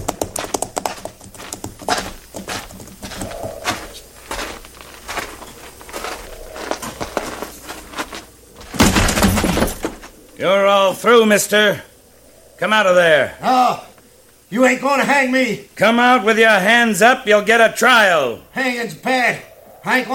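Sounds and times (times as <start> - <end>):
horses' hooves clip-clopping: 0.0 - 10.2
speech: 10.4 - 11.9, 12.6 - 13.9, 14.5 - 20.1.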